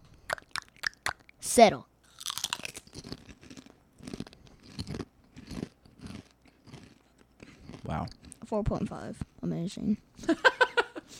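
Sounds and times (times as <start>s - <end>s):
speech: 1.4s - 1.9s, 7.9s - 10.5s
cinnamon churro strips bitten and chewed with crisp crunching: 2.1s - 8.4s.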